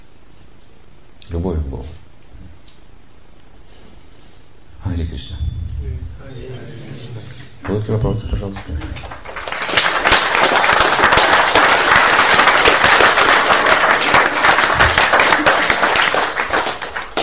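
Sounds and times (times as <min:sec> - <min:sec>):
speech: 0:01.3 - 0:02.0, 0:05.0 - 0:09.2
room full of people applauding: 0:07.6 - 0:17.2.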